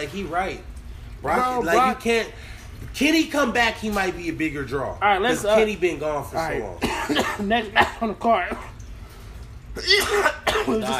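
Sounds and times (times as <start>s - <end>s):
speech: 0.0s - 8.7s, 9.8s - 10.9s
person coughing from smoking weed: 6.8s - 8.8s, 9.8s - 10.9s.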